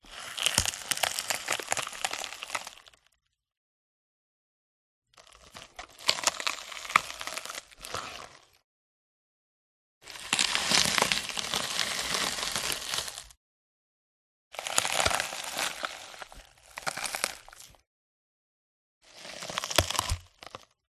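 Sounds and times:
short mushy watermelon crunch: 0.1s - 3.1s, 5.2s - 8.6s, 10.1s - 13.4s, 14.6s - 17.8s, 19.1s - 20.8s.

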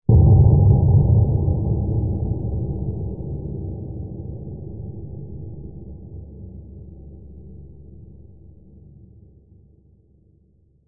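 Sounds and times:
dark deep low-pitched metallic impact hit: 0.1s - 5.3s.

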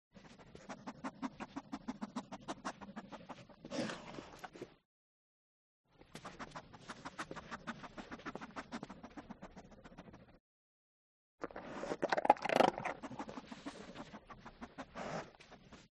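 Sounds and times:
Staffordshire dog sniffing: 0.2s - 4.5s, 6.1s - 10.4s, 11.5s - 15.9s
Staffordshire dog eating: 11.4s - 14.3s.

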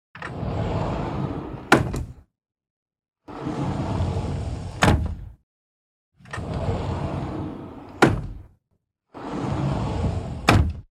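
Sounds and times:
household cabinet sliding glass door opening and closing: 0.2s - 2.2s, 3.3s - 5.3s, 6.2s - 8.5s, 9.2s - 10.9s.

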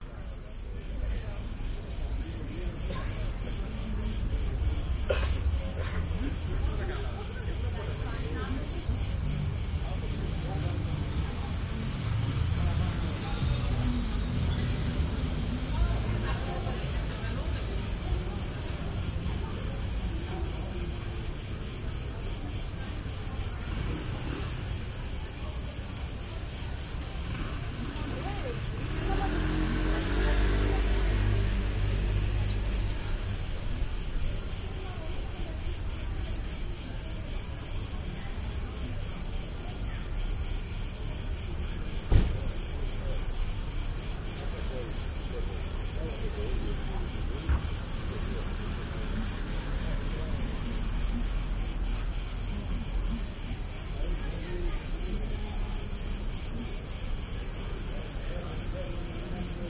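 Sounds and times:
side street ambience on a weekday evening in Athens: 0.0s - 59.6s.

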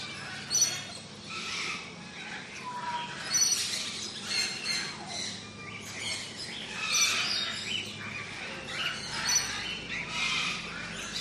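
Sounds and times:
parrots and parakeets squawking and chirping in a large tropical aviary: 0.0s - 11.2s.

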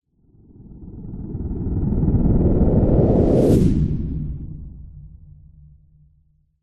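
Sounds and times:
science fiction spacecraft flying by fast: 1.0s - 4.6s.

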